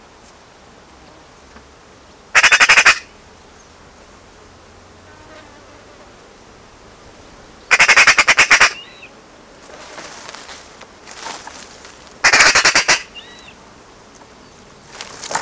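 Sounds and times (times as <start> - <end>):
Eurasian magpie Pica pica giving rattling chatters: 2.4 - 3.1, 7.7 - 9.1, 9.9 - 13.5.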